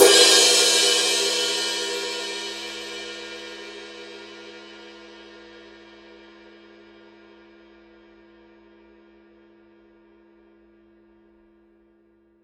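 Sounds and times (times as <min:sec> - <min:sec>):
20-inch Paiste 2002 power ride cymbal struck on edge: 0:00.0 - 0:03.7.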